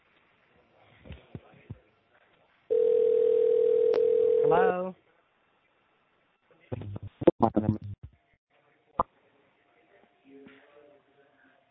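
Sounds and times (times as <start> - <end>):
ringing tone on a phone line during a customer service call: 2.7 - 4.7.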